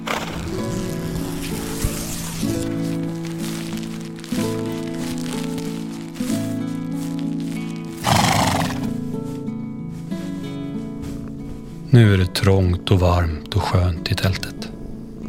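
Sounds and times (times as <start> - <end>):
horse hoofbeats clip-clopping: 0.0 - 11.6
soft music: 0.0 - 15.2
mare whinnying and neighing: 8.0 - 8.9
speech: 12.0 - 14.6.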